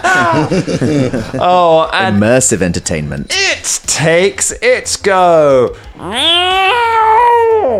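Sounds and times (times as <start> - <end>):
laughter: 0.0 - 1.7
speech: 0.0 - 6.8
domestic cat meowing with a whiny tone: 6.0 - 7.7.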